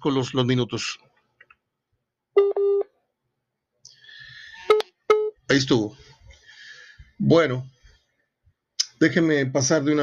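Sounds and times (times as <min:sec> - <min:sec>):
speech: 0:00.0 - 0:01.1, 0:05.5 - 0:06.1, 0:07.2 - 0:07.8, 0:09.0 - 0:10.0
electronic telephone beeps as a call is hung up: 0:02.4 - 0:02.9.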